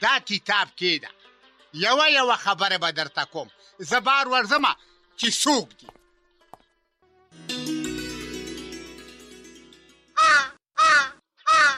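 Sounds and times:
speech: 0.0 - 6.0
crow cawing: 10.2 - 11.7.

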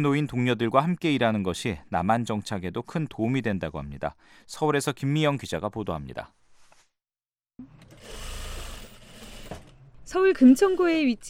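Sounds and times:
speech: 0.0 - 6.4, 7.6 - 8.2, 10.1 - 11.2
sewing machines whirring in a small sewing factory in Seoul: 7.7 - 9.8.

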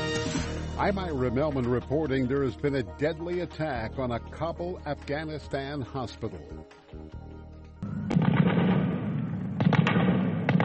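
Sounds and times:
speech: 0.8 - 7.2
rapid gunfire echoing in an open urban space: 8.0 - 10.6.

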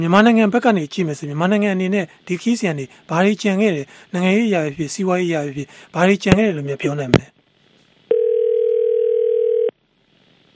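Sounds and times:
speech: 0.0 - 7.4
telephone dial tone after the line is cut off: 8.1 - 9.7.

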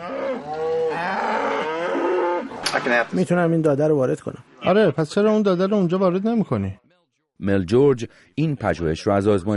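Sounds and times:
cow mooing: 0.0 - 2.5
speech: 2.8 - 6.8, 7.4 - 9.5.

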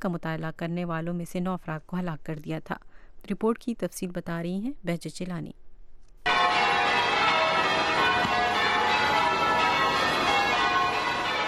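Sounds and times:
speech: 0.0 - 5.6
church bells ringing across the churches of Charleston: 6.3 - 11.4.

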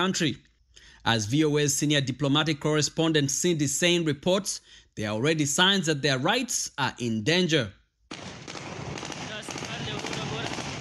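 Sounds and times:
speech: 0.0 - 8.3
celebratory gunfire from Taliban fighters in Afghanistan: 8.1 - 10.7.

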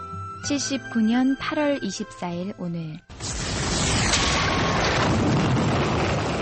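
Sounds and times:
speech: 0.5 - 3.1
volcanic eruption explosion with deep continuous rumble: 3.1 - 6.4.

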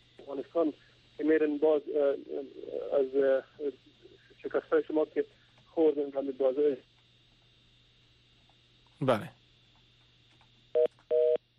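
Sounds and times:
speech: 0.3 - 6.9, 9.0 - 9.4
telephone busy tone after a dropped call: 10.8 - 11.5.

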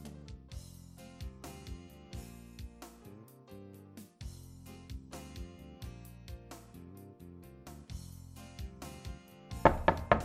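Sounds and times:
backing music: 0.0 - 10.2
loud sharp knocks on a door: 9.6 - 10.2.

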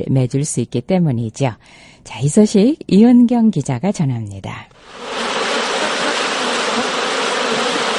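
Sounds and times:
speech: 0.0 - 5.1
many honeybees buzzing: 4.8 - 7.9.

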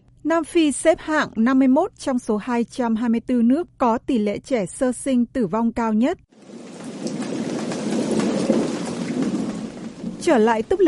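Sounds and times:
speech: 0.2 - 6.7, 10.2 - 10.8
heavy rain pouring: 6.4 - 10.8
low rolling rumble of thunder: 6.4 - 10.8.

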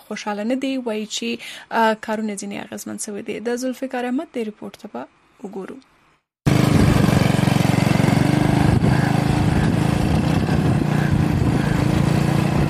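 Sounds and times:
speech: 0.1 - 5.9
beach buggy or scooter engine running on the Karachi shore: 6.5 - 12.6.

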